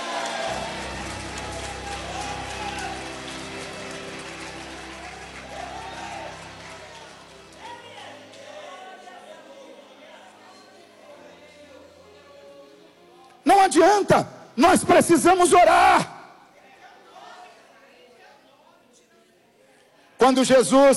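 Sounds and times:
audience clapping to give glory to God: 0.0s - 9.0s
speech: 13.7s - 16.1s, 20.3s - 20.9s.

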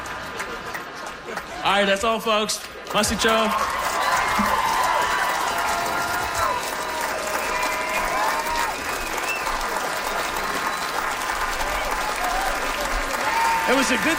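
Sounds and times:
crowd clapping: 0.0s - 14.1s
speech: 1.6s - 3.8s, 13.7s - 14.1s
cheers and whoops: 3.5s - 14.1s.

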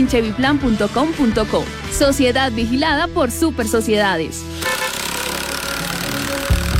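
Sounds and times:
speech: 0.0s - 4.6s
engine idling at road construction works in Manizales: 4.6s - 6.7s.

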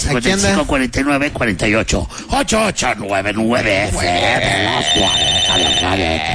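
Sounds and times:
busy voices talking over each other: 0.0s - 6.3s
laughter: 0.0s - 6.3s
electronic studio telephone ringing with an incoming call: 3.5s - 6.3s.

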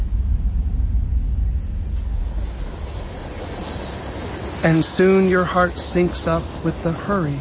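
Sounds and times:
heavy low rumble: 0.0s - 6.6s
faint hiss: 1.8s - 7.3s
speech: 4.6s - 7.3s.

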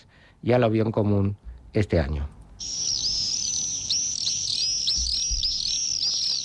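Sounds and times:
speech: 0.4s - 2.8s
adult common swifts screaming calls in a chorus: 2.6s - 6.4s.

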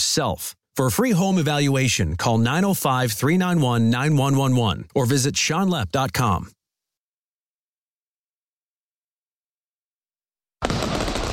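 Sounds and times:
speech: 0.0s - 6.6s
fireworks bursting and crackling: 10.6s - 11.3s.

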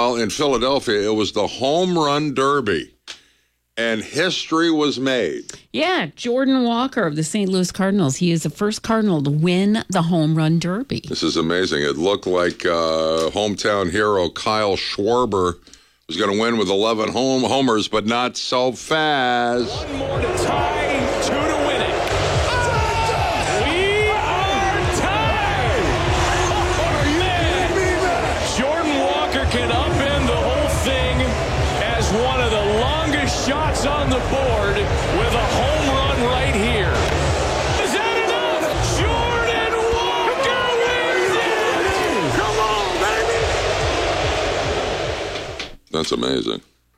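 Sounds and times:
speech: 0.0s - 3.0s, 3.8s - 21.4s, 46.0s - 46.7s
large stadium crowd roaring and booing: 19.5s - 45.7s.

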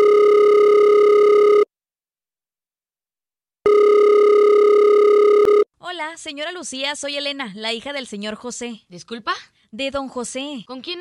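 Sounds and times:
mobile phone ringback tone, steady electronic buzz: 0.0s - 1.7s, 3.7s - 5.6s
speech: 6.2s - 10.9s.

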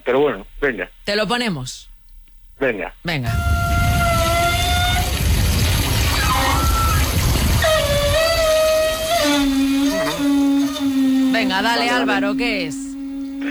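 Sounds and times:
speech: 0.1s - 1.9s, 2.6s - 3.7s, 11.4s - 13.4s
Galician ox cart wooden axle squealing: 3.3s - 13.4s
steady rumbling rolling noise: 3.3s - 13.4s.

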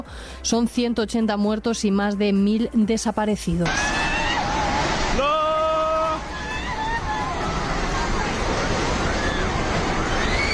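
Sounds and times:
speech: 0.0s - 4.0s
flash flood water rushing through town: 3.6s - 10.5s
shouting voices: 3.7s - 10.5s.

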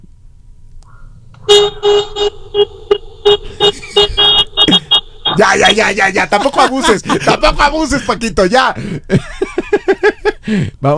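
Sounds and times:
car horn honking: 1.4s - 7.2s
speech: 1.6s - 2.7s, 5.4s - 9.4s, 10.4s - 10.9s
laughter: 1.8s - 10.7s.

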